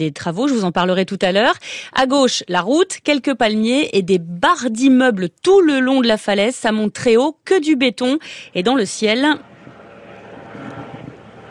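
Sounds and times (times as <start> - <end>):
speech: 0.0 - 9.5
helicopter passing overhead above a coastal city: 7.9 - 11.4.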